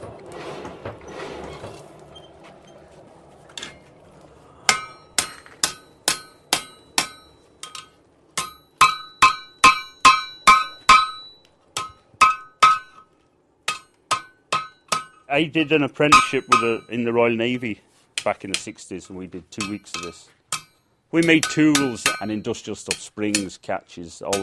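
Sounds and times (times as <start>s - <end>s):
blacksmith hammering hot metal on an anvil: 4.7s - 13.0s, 13.7s - 15.3s, 16.1s - 17.1s, 19.6s - 23.6s, 24.3s - 24.4s
speech: 15.4s - 20.4s, 21.1s - 24.4s.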